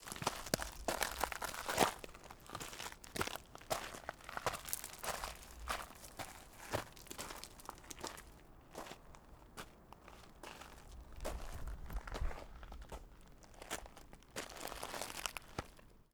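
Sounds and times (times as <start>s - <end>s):
footsteps and foot shuffles on gravel: 0.0s - 15.8s.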